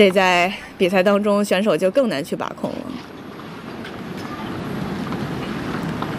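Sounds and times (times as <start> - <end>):
speech: 0.0 - 3.1
strong gusty wind outdoors at a tennis match: 0.0 - 6.1
wind buffeting the microphone: 2.5 - 6.1.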